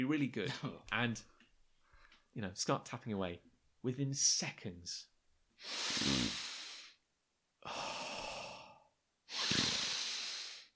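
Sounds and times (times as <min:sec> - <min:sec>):
speech: 0:00.0 - 0:01.3, 0:02.3 - 0:06.4
person imitating heavy hissing breathing: 0:05.6 - 0:07.0, 0:07.6 - 0:10.7.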